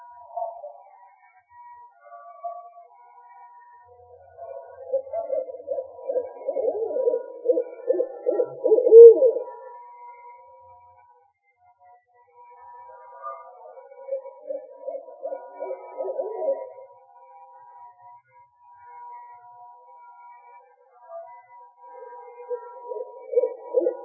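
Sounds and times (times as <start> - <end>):
owl hooting: 4.4 - 9.8, 13.6 - 16.9, 22.0 - 24.0.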